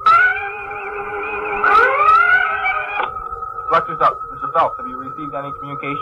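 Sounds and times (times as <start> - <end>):
loud electronic red alert alarm blaring: 0.0 - 6.0
low hum: 0.0 - 6.0
speech: 3.7 - 6.0.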